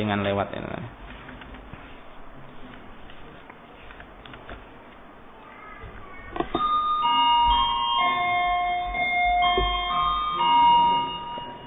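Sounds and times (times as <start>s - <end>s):
speech: 0.0s - 1.0s
electric bell chiming after button pressed: 6.5s - 11.6s.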